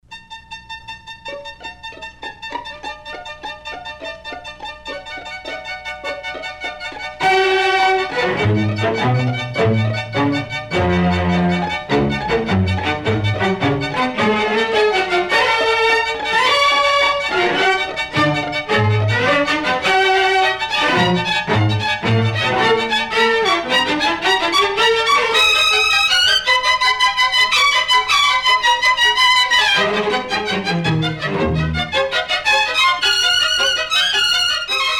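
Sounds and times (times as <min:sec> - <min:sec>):
string orchestra: 0:00.2 - 0:34.9
trumpet: 0:07.2 - 0:34.9.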